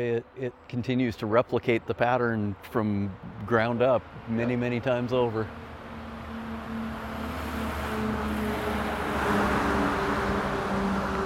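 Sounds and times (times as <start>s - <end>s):
speech: 0.0s - 5.6s
broadband road and wind noise: 0.0s - 11.2s
heavy logging truck driving past: 2.8s - 11.2s.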